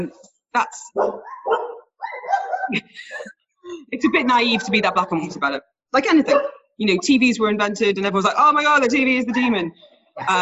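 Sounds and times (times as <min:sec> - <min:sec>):
speech: 0:00.0 - 0:01.3, 0:02.7 - 0:10.4
dogs barking: 0:00.9 - 0:02.8, 0:04.0 - 0:05.4, 0:06.2 - 0:06.7, 0:08.8 - 0:09.8
laughter: 0:02.2 - 0:05.6, 0:10.2 - 0:10.4.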